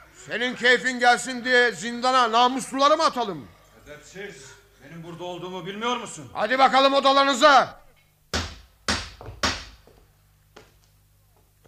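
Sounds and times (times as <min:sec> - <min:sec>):
speech: 0:00.2 - 0:07.8
heavy knocking on a wooden door: 0:08.4 - 0:09.9.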